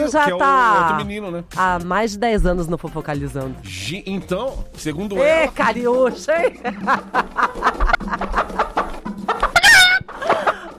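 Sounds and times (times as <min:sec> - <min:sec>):
speech: 0:00.1 - 0:08.7
laughter: 0:05.6 - 0:09.0, 0:09.9 - 0:10.7
chicken clucking: 0:06.8 - 0:10.7
chicken drawn-out squawk: 0:07.5 - 0:10.7.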